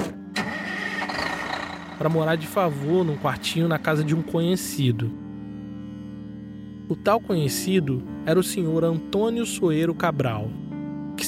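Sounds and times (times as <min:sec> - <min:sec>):
moving truck engine starting and running: 0:00.0 - 0:04.3
speech: 0:02.0 - 0:05.2, 0:06.9 - 0:10.6.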